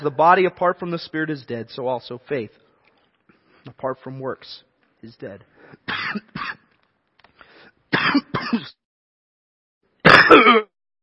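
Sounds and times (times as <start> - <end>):
speech: 0.0 - 2.6, 3.6 - 6.6, 10.3 - 10.7
speaker clearing throat during a sermon: 5.9 - 6.6, 8.0 - 8.8, 10.0 - 10.7.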